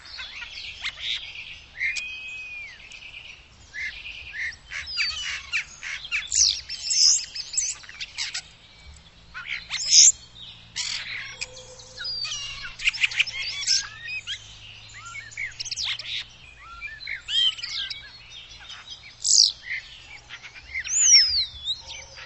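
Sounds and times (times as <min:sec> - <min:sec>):
bird chirping and twittering: 0:00.0 - 0:22.2.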